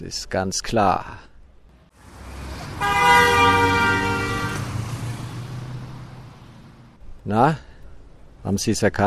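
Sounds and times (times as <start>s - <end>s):
speech: 0.0s - 1.3s, 7.2s - 7.7s, 8.4s - 9.0s
low rumble of engine or traffic noise: 1.4s - 9.0s
single sustained car horn blaring: 2.1s - 5.4s.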